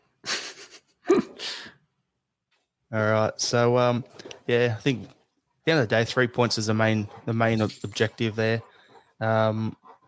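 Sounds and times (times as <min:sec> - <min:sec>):
speech: 0:02.9 - 0:09.8
dog panting: 0:06.1 - 0:10.0.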